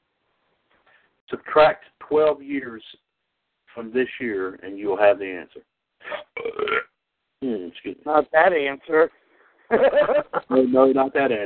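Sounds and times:
speech: 1.3 - 3.0, 3.7 - 11.4
loud rumbling belch: 6.0 - 6.9
laughter: 9.7 - 11.0.

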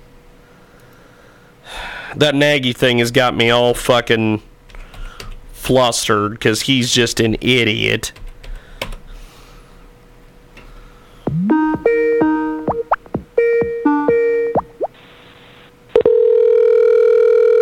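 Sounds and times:
speech: 2.1 - 4.5, 5.6 - 8.2
telephone line dial tone hum: 11.3 - 14.9, 16.0 - 17.6
telephone ringing tone: 16.0 - 17.6.

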